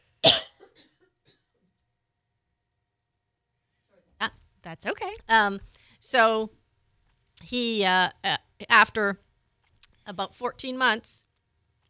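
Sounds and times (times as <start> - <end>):
single sharp cough: 0.2 - 1.7
speech: 4.7 - 6.6, 7.4 - 9.2, 10.1 - 11.2.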